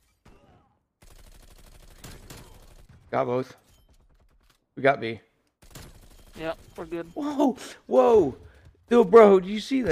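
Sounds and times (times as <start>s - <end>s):
automatic gunfire in a video game: 1.0s - 3.0s
speech: 3.1s - 3.6s, 4.8s - 5.3s, 6.4s - 9.9s.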